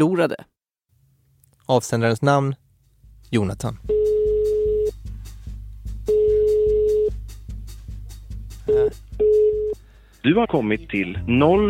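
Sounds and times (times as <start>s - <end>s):
speech: 0.0s - 0.6s, 1.7s - 2.6s, 3.3s - 4.1s, 10.2s - 11.6s
rhythmic thumping low beat: 2.8s - 10.0s
telephone ringing tone: 3.9s - 4.9s, 6.1s - 7.1s, 8.7s - 9.8s.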